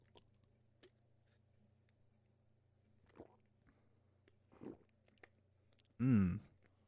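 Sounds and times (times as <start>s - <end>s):
person sipping and swallowing water: 3.0s - 3.5s, 4.5s - 6.8s
person sighing: 6.0s - 6.5s.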